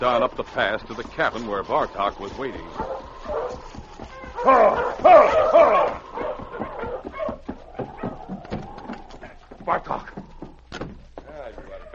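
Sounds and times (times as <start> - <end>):
speech: 0.0 - 5.8
pack of sled dogs barking and yipping excitedly: 1.7 - 10.7.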